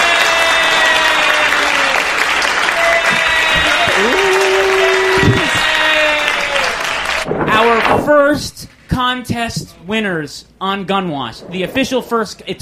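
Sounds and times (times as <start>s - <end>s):
people whooping: 0.0s - 7.2s
applause of many clapping hands: 0.0s - 7.3s
speech: 8.1s - 12.6s.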